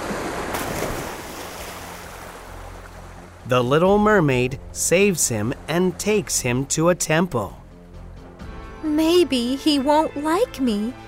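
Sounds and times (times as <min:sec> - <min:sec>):
storm wind rushing over the water: 0:00.0 - 0:03.3
rough sea waves crashing during a storm: 0:00.0 - 0:07.9
speech: 0:03.5 - 0:07.6, 0:09.0 - 0:11.0.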